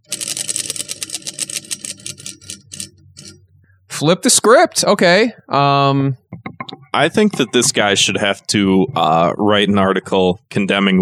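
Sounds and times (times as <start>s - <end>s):
prize wheel spinning with ratcheting clicks: 0.0s - 3.4s
speech: 4.0s - 11.0s.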